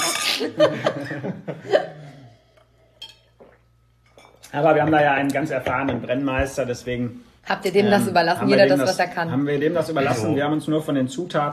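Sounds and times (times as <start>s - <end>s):
people laughing: 0.3s - 2.2s
speech: 0.4s - 2.0s, 4.5s - 11.5s
glasses clinking together in a toast: 2.9s - 4.4s.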